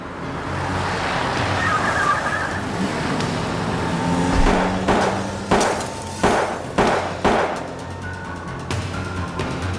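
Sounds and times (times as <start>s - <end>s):
road noise: 0.0s - 9.7s
car engine rumbling: 1.6s - 7.7s
gunshots shattering a car window: 4.4s - 7.8s.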